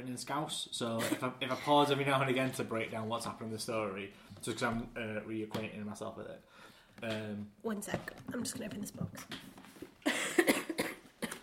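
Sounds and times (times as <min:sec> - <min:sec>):
speech: 0:00.1 - 0:09.6
rough breathy coughs: 0:10.0 - 0:11.4.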